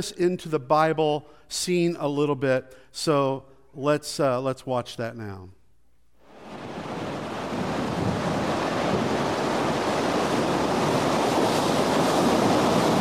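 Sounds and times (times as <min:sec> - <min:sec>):
speech: 0:00.0 - 0:05.6
storm waves crashing and surging around fishing boat: 0:06.2 - 0:12.9
heavy wind buffeting the microphone: 0:06.4 - 0:12.9.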